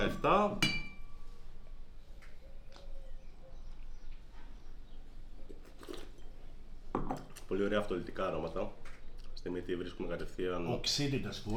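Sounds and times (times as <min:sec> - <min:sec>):
speech: 0:00.0 - 0:00.7, 0:07.5 - 0:11.5
wine glasses of Blanc de Blancs Chardonnay clinking in a toast: 0:00.0 - 0:01.2.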